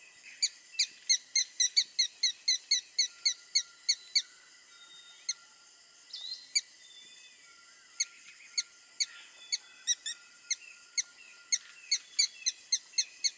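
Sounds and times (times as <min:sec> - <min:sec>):
red-stained woodpecker calling sharp high squeaky notes: 0:00.4 - 0:04.2, 0:08.0 - 0:13.3.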